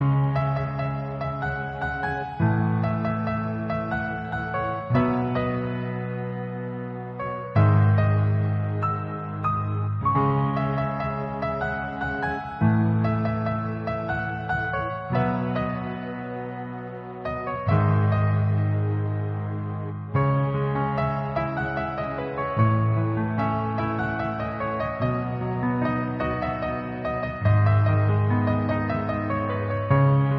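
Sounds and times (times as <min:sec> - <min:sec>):
piano instrumental: 0:00.0 - 0:30.3.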